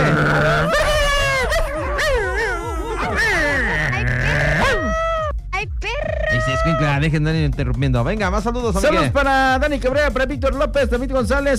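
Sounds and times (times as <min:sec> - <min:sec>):
rhythmic low thumping: 0:00.0 - 0:11.5
dog whimpering and yipping: 0:00.4 - 0:05.3
speech: 0:07.0 - 0:11.5.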